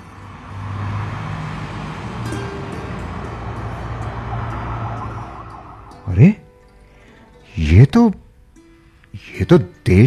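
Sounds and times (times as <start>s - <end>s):
many luxury cars and media vehicles rumbling past with engine hum and road noise: 0.0s - 7.4s
speech: 7.7s - 8.2s, 9.3s - 10.0s.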